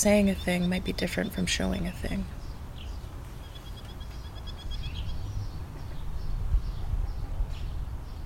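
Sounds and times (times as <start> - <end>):
speech: 0.0 - 2.4
birds chirping: 0.0 - 8.2.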